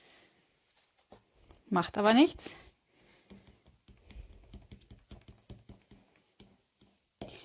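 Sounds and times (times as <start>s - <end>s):
speech: 1.7s - 2.6s
white pen dabbing dots on a paper card: 3.1s - 7.4s.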